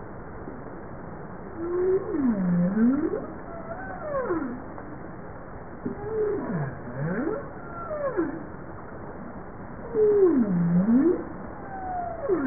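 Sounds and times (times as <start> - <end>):
sea noise: 0.0 - 12.4
bowhead whale song: 1.6 - 4.7, 5.9 - 8.6, 9.8 - 12.4.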